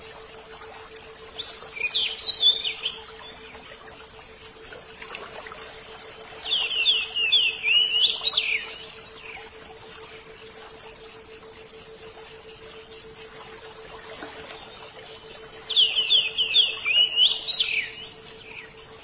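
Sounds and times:
oriental magpie-robin whistled song: 0:01.4 - 0:03.0, 0:06.4 - 0:09.4, 0:15.2 - 0:18.7.

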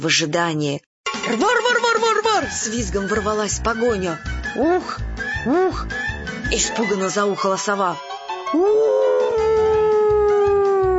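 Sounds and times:
speech: 0:00.0 - 0:09.5
wolf howling in a dark forest at night: 0:08.5 - 0:10.9.

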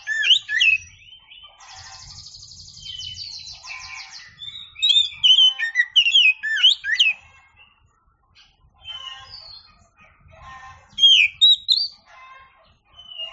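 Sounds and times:
Oriental magpie-robin song with slurred whistles and buzzy trill: 0:00.0 - 0:07.2, 0:08.8 - 0:09.7, 0:11.0 - 0:12.1, 0:13.0 - 0:13.3.

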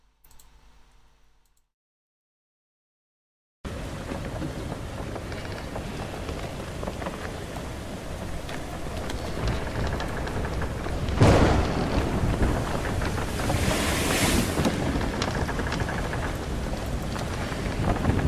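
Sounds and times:
crashing waves on a boat deck during a violent tempest: 0:03.7 - 0:18.2
storm wind on a boat deck at night during a violent tempest: 0:03.7 - 0:18.2.

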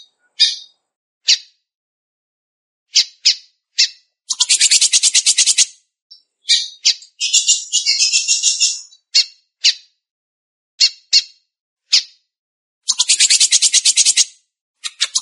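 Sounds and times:
Belgian canary singing trills: 0:00.0 - 0:01.4, 0:02.9 - 0:09.8, 0:12.9 - 0:15.2.

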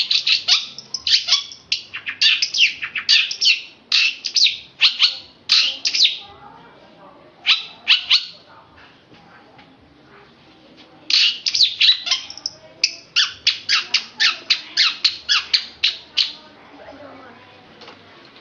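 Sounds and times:
Oriental magpie-robin singing runs of sharp high chirps: 0:00.0 - 0:06.2, 0:07.4 - 0:08.4, 0:11.1 - 0:16.4.

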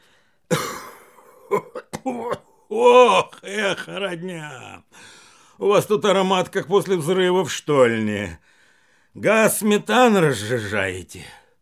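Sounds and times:
miner clearing throat: 0:00.5 - 0:03.9
miner coughing: 0:00.5 - 0:04.7
speech: 0:01.5 - 0:08.5, 0:09.2 - 0:11.4.

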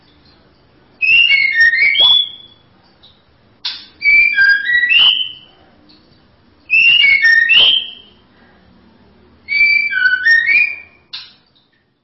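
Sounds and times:
white-rumped shama whistling short fluty phrases: 0:01.0 - 0:02.6, 0:04.0 - 0:05.5, 0:06.7 - 0:08.2, 0:09.5 - 0:11.2.

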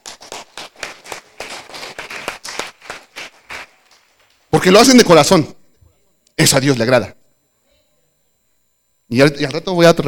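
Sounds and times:
church congregation clapping in a quick steady rhythm: 0:00.0 - 0:05.2
speech: 0:04.6 - 0:05.6, 0:06.4 - 0:07.2, 0:09.1 - 0:10.0.

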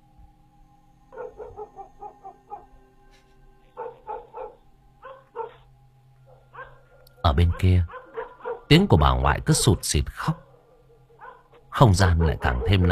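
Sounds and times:
low steady hum: 0:00.0 - 0:12.9
neighbour's dog barking at night: 0:01.1 - 0:02.7, 0:03.8 - 0:05.7, 0:06.3 - 0:08.7, 0:09.5 - 0:12.9
speech: 0:07.3 - 0:08.0, 0:08.7 - 0:10.4, 0:11.8 - 0:12.9.

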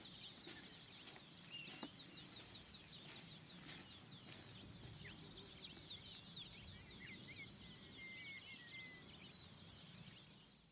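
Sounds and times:
faint soft chirping: 0:00.0 - 0:10.7
black-masked finch Coryphaspiza melanotis high thin short calls: 0:00.8 - 0:01.1, 0:02.1 - 0:02.5, 0:03.5 - 0:03.8, 0:05.0 - 0:05.3, 0:06.3 - 0:06.8, 0:08.4 - 0:08.7, 0:09.7 - 0:10.1.

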